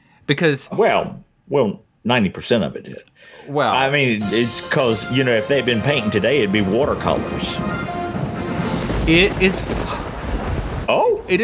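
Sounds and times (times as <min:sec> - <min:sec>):
speech: 0:00.3 - 0:07.9, 0:09.1 - 0:10.1, 0:10.9 - 0:11.4
heavy rain outside: 0:04.2 - 0:11.4
gusting wind: 0:06.4 - 0:11.4.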